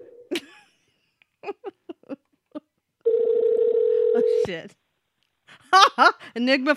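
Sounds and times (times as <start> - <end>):
phone dial tone: 3.1 - 4.4
speech: 4.5 - 4.8, 5.7 - 6.7.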